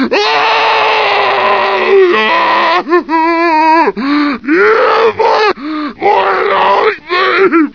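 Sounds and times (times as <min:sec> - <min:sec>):
poisoned zombie moaning: 0:00.1 - 0:07.6.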